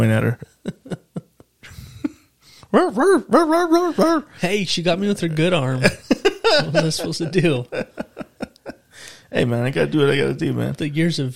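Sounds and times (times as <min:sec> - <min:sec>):
speech: 0:00.0 - 0:00.8, 0:02.7 - 0:08.0, 0:09.3 - 0:11.3
laughter: 0:00.4 - 0:02.2, 0:05.8 - 0:09.0
man barking like a dog with his voice: 0:02.7 - 0:04.3.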